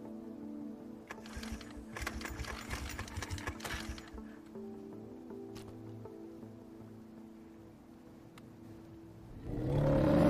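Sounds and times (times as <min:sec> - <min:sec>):
outboard motor pull-cord tugs: 0:01.1 - 0:04.2.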